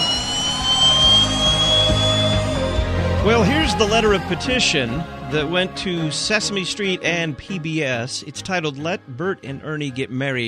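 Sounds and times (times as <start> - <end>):
jet engine roaring with high-pitched whine: 0.0 - 4.6
speech: 3.2 - 10.4.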